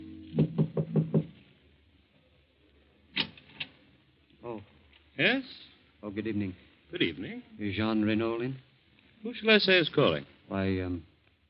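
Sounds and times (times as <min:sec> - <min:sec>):
knocking on a door: 0:00.4 - 0:01.3
speech: 0:04.6 - 0:11.1.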